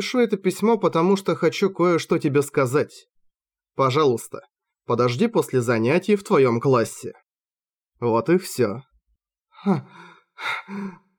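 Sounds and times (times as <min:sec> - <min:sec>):
speech: 0:00.0 - 0:03.2, 0:03.8 - 0:07.2, 0:08.0 - 0:08.9, 0:09.6 - 0:11.0
woman gasping for air after holding her breath while reading a letter: 0:09.6 - 0:11.1.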